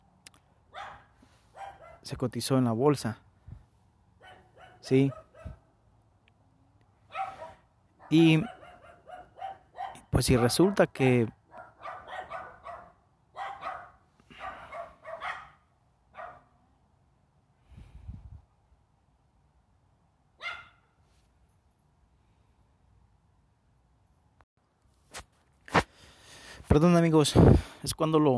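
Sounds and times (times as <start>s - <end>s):
dog barking: 0.7s - 2.1s, 4.2s - 5.6s, 7.1s - 10.9s, 11.5s - 16.6s, 20.4s - 20.9s
speech: 2.0s - 3.3s, 4.8s - 5.2s, 8.1s - 8.6s, 10.2s - 11.4s, 26.8s - 28.3s.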